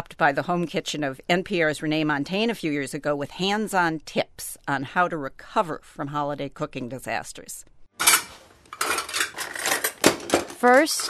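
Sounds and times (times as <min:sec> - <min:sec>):
speech: 0:00.2 - 0:07.7, 0:10.6 - 0:11.0
dishes and cutlery clattering in kitchen cabinets and drawers: 0:08.0 - 0:11.0
rummaging through cabinets and drawers in a home kitchen: 0:08.0 - 0:11.0.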